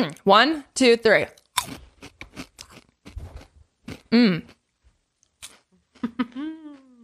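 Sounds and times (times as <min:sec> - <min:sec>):
speech: 0:00.0 - 0:01.8, 0:04.1 - 0:04.6
chips being chewed: 0:01.4 - 0:04.1, 0:05.2 - 0:06.1.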